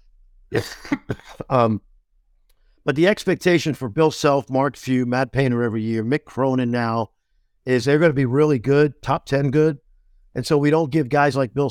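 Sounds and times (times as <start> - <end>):
harsh coughs: 0.5 - 1.6
rough voiced throat-clearing: 0.5 - 1.7
speech: 0.5 - 1.9, 2.8 - 9.8, 10.4 - 11.6.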